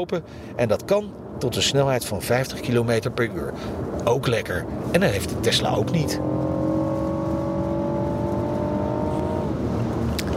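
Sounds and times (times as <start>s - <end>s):
speech: 0.0s - 6.4s
three-cylinder sports car engine revving: 5.1s - 10.3s.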